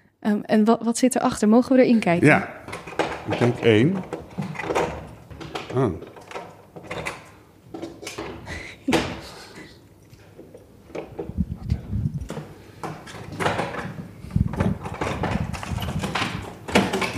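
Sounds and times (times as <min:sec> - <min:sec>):
speech: 0:00.2 - 0:04.1, 0:05.8 - 0:06.1
door with five locks creaking open: 0:02.6 - 0:09.3, 0:12.2 - 0:17.1
metallic clicks and clunks of door locks being unlocked: 0:02.7 - 0:09.2, 0:12.2 - 0:17.1.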